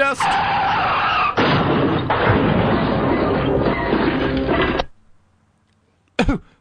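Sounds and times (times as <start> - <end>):
loud car crash: 0.2 - 5.0
short sharp impact: 1.3 - 5.0.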